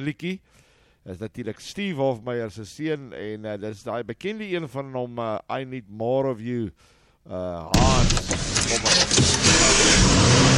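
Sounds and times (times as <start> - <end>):
speech: 0.0 - 10.4
brief tonal voice-like opening of a song: 7.8 - 10.5
car engine starting and roaring in a song intro: 7.8 - 10.5.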